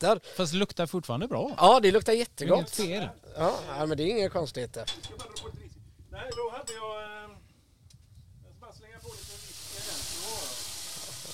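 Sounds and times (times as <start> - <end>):
speech: 0.0 - 5.3, 6.2 - 7.4
onions sizzling as grill flames flare up: 9.1 - 11.3.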